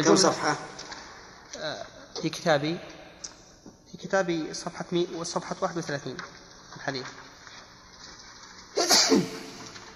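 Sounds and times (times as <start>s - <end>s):
speech: 0.0s - 0.8s, 1.6s - 3.0s, 4.0s - 7.2s, 9.1s - 9.4s
sneeze: 8.8s - 9.8s.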